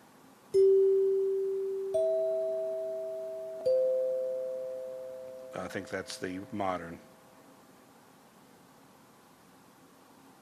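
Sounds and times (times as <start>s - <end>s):
faint hiss: 0.0s - 10.3s
hand-struck three-note chimes: 0.6s - 6.1s
speech: 5.7s - 7.1s.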